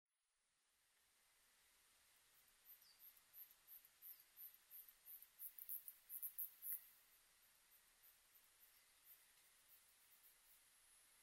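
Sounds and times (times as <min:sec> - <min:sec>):
soft hiss: 0:00.4 - 0:11.2
katydid singing: 0:02.6 - 0:10.6.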